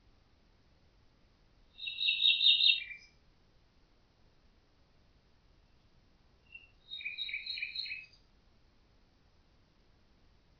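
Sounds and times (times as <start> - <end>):
Common nightingale song trill: 1.7 - 3.2, 5.7 - 8.3.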